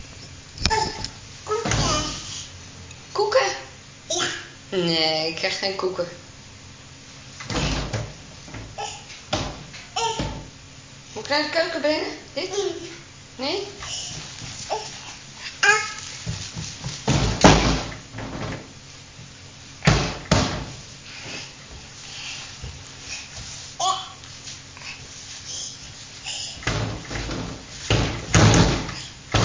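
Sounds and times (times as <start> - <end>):
child babbling: 0.7 - 2.5, 4.1 - 4.6, 8.8 - 9.1, 9.9 - 10.5, 12.5 - 13.0, 13.8 - 16.1, 23.8 - 24.2, 25.5 - 26.6
speech: 4.7 - 6.3, 11.3 - 13.9
door banging and slamming: 7.5 - 10.5, 17.1 - 18.7, 19.9 - 20.8, 26.7 - 29.4.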